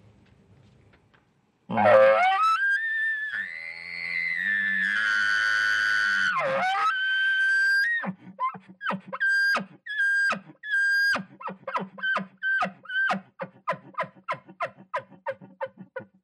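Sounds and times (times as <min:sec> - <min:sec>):
person imitating an angry bull elk bugle: 0:01.8 - 0:16.1
rhythmic grunting chuckles of elk call imitation: 0:13.3 - 0:16.1.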